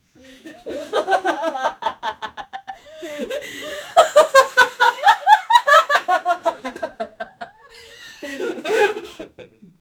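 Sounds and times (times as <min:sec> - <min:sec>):
audience laughing as a comedy laugh track: 0:00.4 - 0:09.5.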